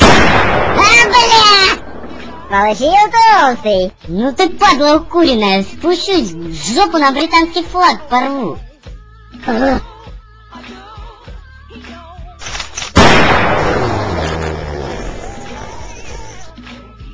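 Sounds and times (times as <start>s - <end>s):
loud sharp gunshot with long echo: 0.0s - 2.5s, 13.0s - 14.5s
speech: 2.5s - 8.7s, 9.4s - 9.9s
brief vocal-like sound: 13.6s - 16.6s.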